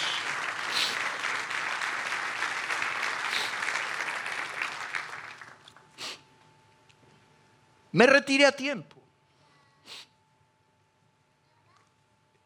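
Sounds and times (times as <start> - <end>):
large crowd applauding in a church: 0.0 - 6.0
speech: 7.9 - 9.0.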